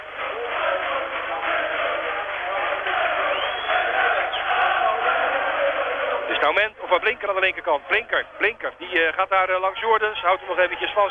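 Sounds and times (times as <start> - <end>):
large football stadium crowd cheering: 0.0 - 11.0
whistles in a stadium crowd: 3.2 - 4.6
speech: 6.5 - 11.0.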